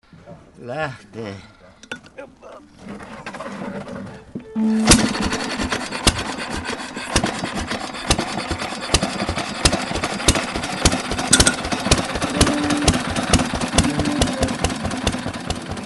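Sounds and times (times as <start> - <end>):
speech: 0.6 - 1.6, 2.2 - 5.5
stationary farm engine putt-putting at an engine festival: 4.6 - 15.8.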